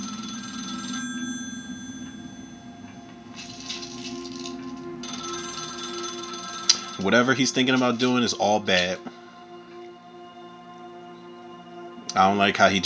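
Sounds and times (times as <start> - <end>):
telephone ringing with a trilling bell: 0.0 - 9.1
low hum: 0.0 - 12.8
speech: 7.0 - 9.1, 12.2 - 12.8.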